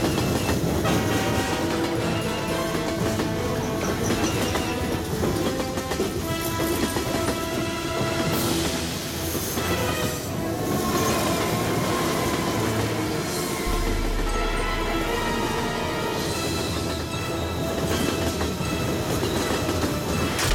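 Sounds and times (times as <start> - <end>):
train rumbling steadily past: 0.0 - 20.4
train horn blaring: 0.8 - 8.6, 11.6 - 18.0.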